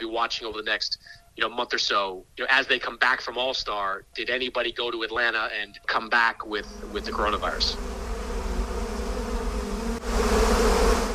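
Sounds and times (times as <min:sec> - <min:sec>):
speech: 0:00.2 - 0:07.9
hornet buzzing: 0:06.6 - 0:11.1.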